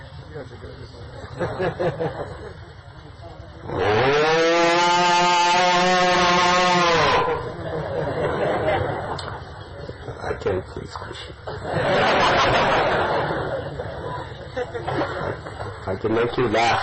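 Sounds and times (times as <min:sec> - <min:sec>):
talking: 0:00.0 - 0:03.7, 0:08.4 - 0:11.6, 0:13.6 - 0:16.8
speech: 0:00.4 - 0:02.7, 0:10.4 - 0:16.8
laughter: 0:01.2 - 0:03.0, 0:07.4 - 0:15.9
cow mooing: 0:03.7 - 0:07.5.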